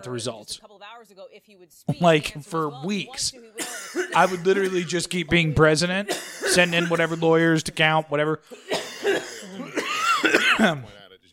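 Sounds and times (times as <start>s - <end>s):
speech: 0.0s - 9.8s, 10.6s - 11.0s
raspy coughing fit from smoking weed: 3.6s - 5.0s, 6.0s - 7.5s, 8.4s - 10.9s.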